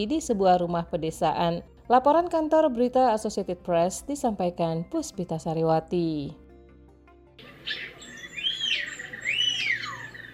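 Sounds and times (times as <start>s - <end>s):
speech: 0.0s - 6.4s, 7.6s - 7.9s
Bali myna bird calls: 7.4s - 10.3s.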